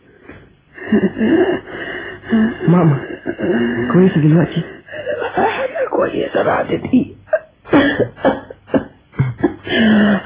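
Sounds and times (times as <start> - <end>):
laughter: 0.8 - 6.2, 7.3 - 10.2
speech: 0.9 - 4.8, 5.4 - 7.2
person coughing from the smoke of burning wet firewood: 7.7 - 10.2.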